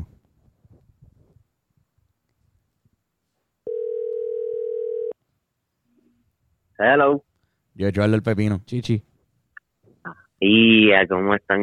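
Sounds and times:
ringback tone of an outgoing telephone call: 3.7s - 5.2s
speech: 6.8s - 9.1s, 10.0s - 11.6s.

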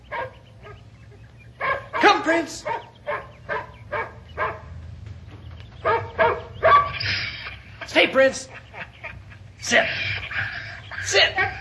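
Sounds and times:
working dog barking: 0.0s - 0.9s, 1.6s - 4.7s, 5.8s - 7.1s, 11.3s - 11.5s
low rumble: 0.0s - 11.5s
speech: 2.2s - 2.8s, 8.1s - 8.6s, 9.6s - 10.0s, 11.0s - 11.5s
laughter: 6.9s - 11.5s.

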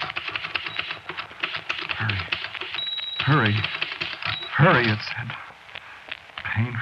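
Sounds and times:
typewriter keys clacking: 0.0s - 5.0s
speech: 2.0s - 2.3s, 3.2s - 3.8s, 4.6s - 5.4s.

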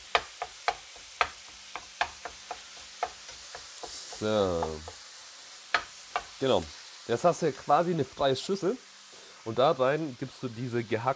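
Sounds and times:
faint sizzle of ground meat in a pan: 0.0s - 11.1s
spatula chopping ground meat in a pan: 0.3s - 6.4s
speech: 4.2s - 5.0s, 6.4s - 11.1s.

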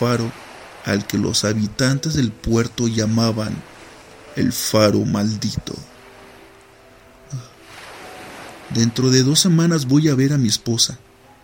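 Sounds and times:
speech: 0.0s - 3.7s, 4.4s - 5.9s, 8.7s - 11.1s
ocean waves breaking against rocks with hissing surf: 0.0s - 6.8s, 7.6s - 10.5s.

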